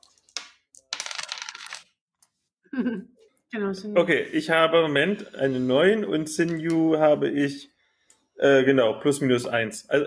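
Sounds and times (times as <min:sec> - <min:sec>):
dice rolled across a hard tabletop: 0:00.3 - 0:01.9
speech: 0:02.7 - 0:07.7, 0:08.4 - 0:10.0.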